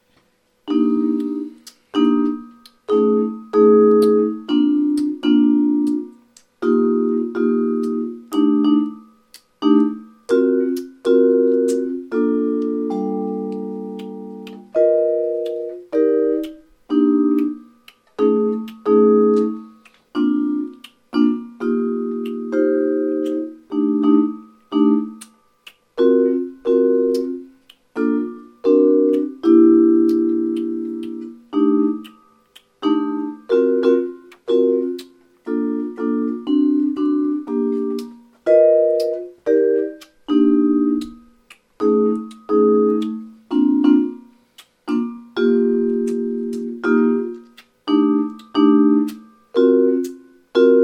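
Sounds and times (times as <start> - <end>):
vibraphone chord in altered closed position: 0.6 - 50.8.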